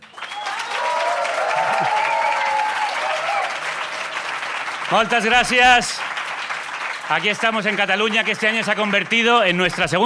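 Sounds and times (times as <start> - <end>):
crowd applauding: 0.0 - 10.0
faint cheering voices: 0.2 - 4.2
speech: 4.9 - 6.1, 7.1 - 10.0.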